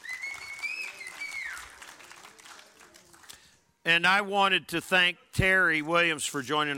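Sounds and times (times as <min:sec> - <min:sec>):
high cheers and whoops: 0:00.0 - 0:01.8
audience applauding at a church service: 0:00.0 - 0:03.4
speech: 0:03.9 - 0:06.7.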